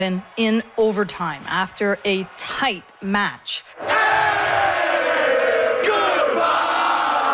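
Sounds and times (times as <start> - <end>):
speech: 0.0 - 3.9
hockey fans cheering outside an arena after an overtime win: 0.0 - 7.3
hockey fan shout sweeping downward in pitch: 3.8 - 7.3.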